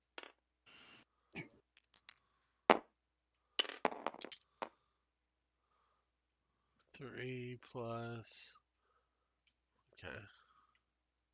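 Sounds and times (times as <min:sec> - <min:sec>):
plastic dice being picked up and rolled: 0:00.0 - 0:00.4, 0:01.8 - 0:02.8, 0:03.6 - 0:04.7
speech: 0:07.0 - 0:08.6, 0:10.0 - 0:10.4.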